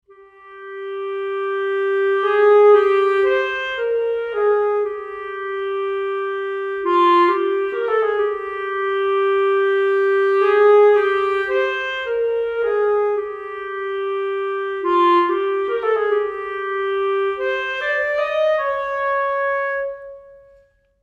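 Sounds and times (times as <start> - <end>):
sampled clarinet: 0.0 - 21.0.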